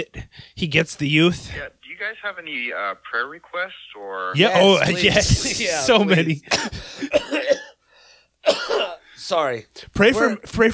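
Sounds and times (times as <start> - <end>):
speech: 0.0 - 7.6, 8.4 - 10.7
person coughing: 6.4 - 7.8, 8.4 - 9.0
wheezy breath: 7.8 - 8.4.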